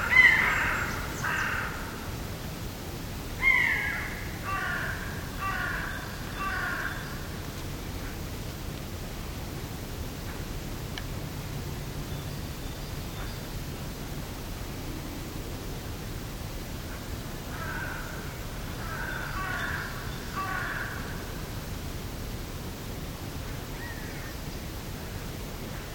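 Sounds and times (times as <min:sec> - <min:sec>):
Hooded Crow cawing: 0:00.0 - 0:01.9, 0:03.4 - 0:07.0, 0:17.5 - 0:21.1
woodland background hiss in mixed woodland in early Spring: 0:00.0 - 0:25.9.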